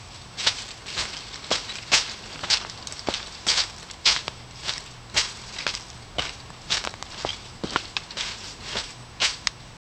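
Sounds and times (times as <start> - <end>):
faint footsteps crushing: 0.0 - 9.6.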